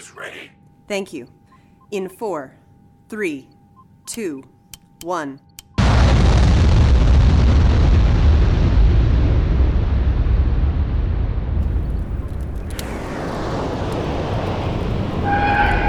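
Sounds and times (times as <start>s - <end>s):
faint electronic tones: 0.0s - 4.7s
speech: 0.0s - 5.5s
explosion during an aerobrake maneuver in a space video game: 5.8s - 15.8s.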